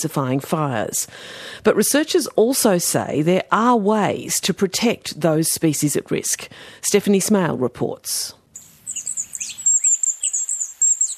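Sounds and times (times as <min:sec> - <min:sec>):
speech: 0:00.0 - 0:08.4
Mallee emu wrens trilling: 0:08.6 - 0:11.1.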